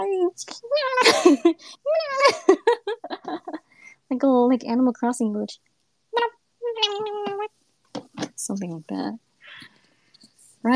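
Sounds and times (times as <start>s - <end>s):
speech: 0.4s - 2.6s, 4.2s - 5.7s, 8.5s - 9.3s
person's voice imitating a cat meowing: 0.6s - 1.2s, 1.8s - 3.5s, 6.2s - 7.5s
person giggling: 1.0s - 3.8s.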